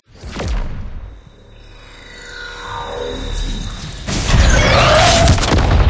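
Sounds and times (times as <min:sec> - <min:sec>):
laser activating: 0:00.1 - 0:05.8.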